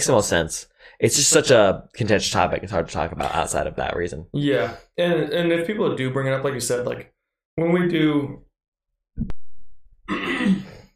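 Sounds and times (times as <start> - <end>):
speech: 0.0 - 8.4
throat clearing: 10.1 - 10.9.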